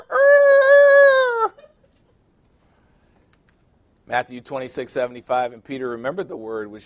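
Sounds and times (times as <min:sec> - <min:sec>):
rooster crowing: 0:00.0 - 0:01.6
speech: 0:04.1 - 0:06.8.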